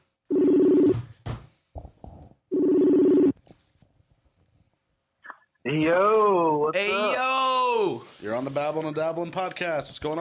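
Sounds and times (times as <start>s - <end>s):
telephone call ringing on the line: 0.3s - 0.9s, 2.5s - 3.3s
speech: 5.7s - 10.1s.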